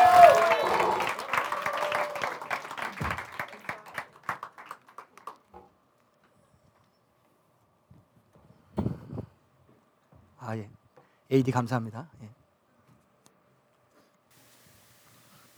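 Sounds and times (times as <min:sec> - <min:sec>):
room full of people applauding: 0:00.0 - 0:05.5
speech: 0:10.5 - 0:12.4.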